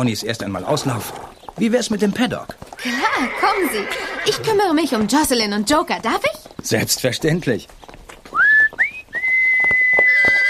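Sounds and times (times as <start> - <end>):
speech: 0.0 - 7.8
person whistling a melody to ponies: 8.4 - 10.2.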